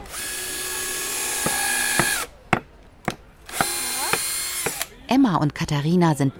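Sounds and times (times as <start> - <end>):
power drill whining: 0.0 - 2.3, 3.5 - 4.9
speech: 5.2 - 6.3.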